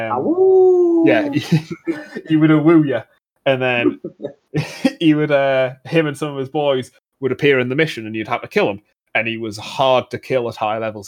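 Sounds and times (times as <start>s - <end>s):
voice imitating a wolf-like howl: 0.0s - 1.4s
speech: 0.0s - 11.0s.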